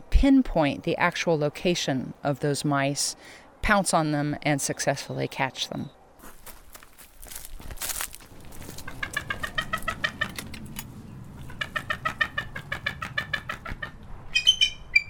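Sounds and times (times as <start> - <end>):
speech: 0.2 - 6.0
bald eagle chattering calls: 8.6 - 10.6, 11.4 - 15.0.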